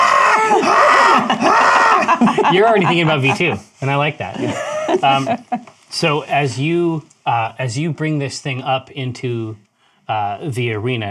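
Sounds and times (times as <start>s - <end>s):
voice imitating a creature's shrieking, screaming laugh: 0.0s - 3.5s
speech: 2.2s - 11.1s.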